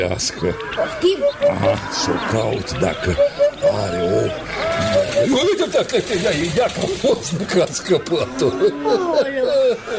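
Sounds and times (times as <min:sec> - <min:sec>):
hen for sale cackling and squawking: 0:00.0 - 0:05.8
speech: 0:00.0 - 0:09.9.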